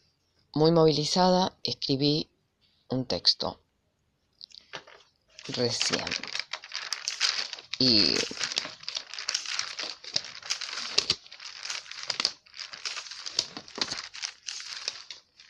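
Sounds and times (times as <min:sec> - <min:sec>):
speech: 0:00.6 - 0:02.3, 0:02.9 - 0:03.6, 0:05.5 - 0:06.3, 0:07.8 - 0:08.4
paper sheets rustling and crinkling as they are shuffled: 0:04.6 - 0:15.4.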